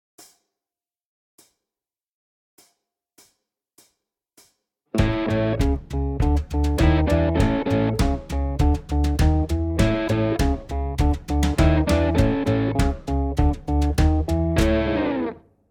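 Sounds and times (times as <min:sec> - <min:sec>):
Chicago blues guitar: 0:05.0 - 0:15.4.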